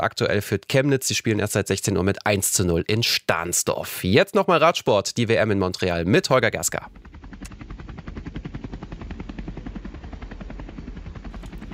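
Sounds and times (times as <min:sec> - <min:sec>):
speech: 0:00.0 - 0:07.1
helicopter rotor thumping: 0:06.7 - 0:11.7.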